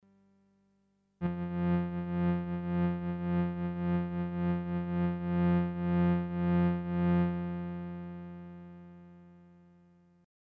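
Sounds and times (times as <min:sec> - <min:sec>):
amplitude modulated synth tone: 0:01.2 - 0:09.4.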